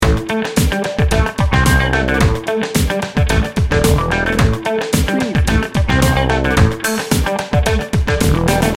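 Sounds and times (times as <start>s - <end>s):
funky street music loop: 0.0s - 8.7s.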